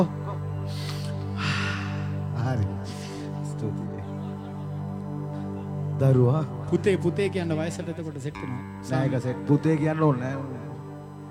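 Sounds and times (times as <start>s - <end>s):
droning tone: 0.0s - 11.2s
deep forceful breathing during a guided breathing exercise: 0.6s - 3.5s
speech: 6.0s - 10.7s.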